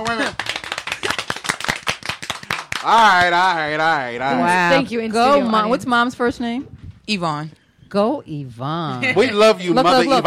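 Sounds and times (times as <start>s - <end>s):
small crowd applause sound effect played by a DJ: 0.0s - 3.5s
speech: 2.8s - 10.2s.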